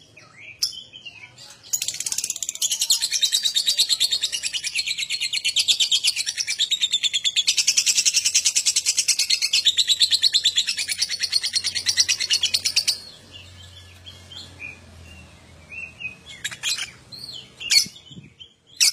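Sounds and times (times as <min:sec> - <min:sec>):
adult lovebird chattering song with buzzy trills: 0:01.7 - 0:18.9.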